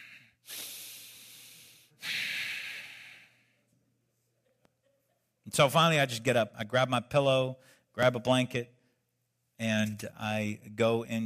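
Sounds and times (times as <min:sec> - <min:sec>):
person imitating heavy breathing: 0:00.0 - 0:03.6
speech: 0:05.5 - 0:08.8, 0:09.6 - 0:11.2.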